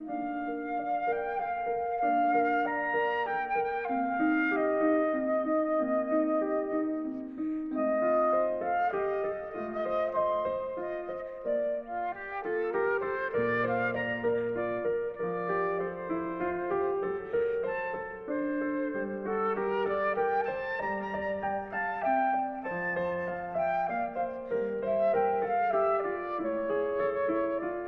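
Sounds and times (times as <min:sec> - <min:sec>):
baroque classical piece: 0:00.0 - 0:27.8.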